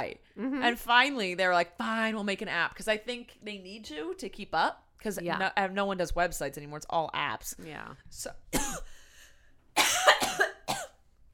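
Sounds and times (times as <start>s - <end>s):
speech: 0.0s - 9.0s
person coughing: 8.6s - 8.9s, 9.8s - 11.0s.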